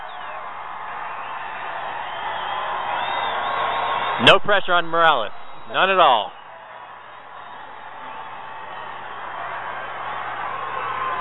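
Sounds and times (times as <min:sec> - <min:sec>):
faint whistles and whoops from stadium crowd: 0:00.0 - 0:04.2, 0:05.3 - 0:09.2
large stadium crowd roaring: 0:00.0 - 0:11.1
speech: 0:04.2 - 0:06.4.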